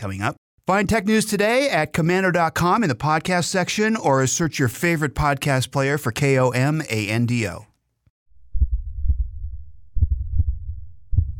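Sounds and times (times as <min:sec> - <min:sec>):
speech: 0:00.0 - 0:07.7
low rumble: 0:08.3 - 0:11.3
man's heart beating: 0:08.4 - 0:11.3.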